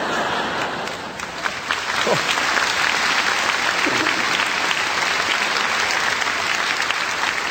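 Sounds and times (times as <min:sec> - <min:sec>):
large audience applause: 0:00.0 - 0:07.4.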